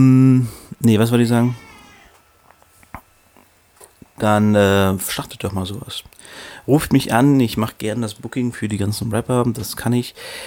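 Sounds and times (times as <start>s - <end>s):
speech: 0.0s - 1.6s, 4.2s - 10.4s
cat meowing: 1.4s - 2.3s.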